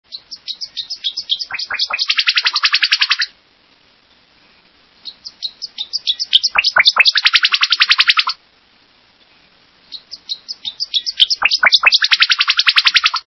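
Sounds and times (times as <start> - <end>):
Tennessee Warbler singing: 0.1 - 3.3, 5.0 - 8.4, 9.8 - 13.2.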